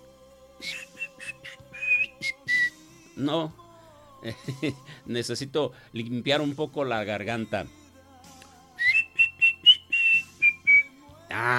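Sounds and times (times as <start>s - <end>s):
person attempting to whistle: 0.6s - 2.8s, 8.8s - 11.5s
speech: 3.2s - 3.6s, 4.2s - 7.8s.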